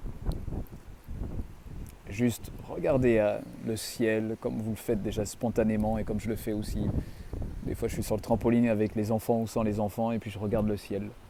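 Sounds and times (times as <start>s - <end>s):
wind blowing in low rumbling gusts outdoors: 0.0s - 11.2s
speech: 2.1s - 11.2s.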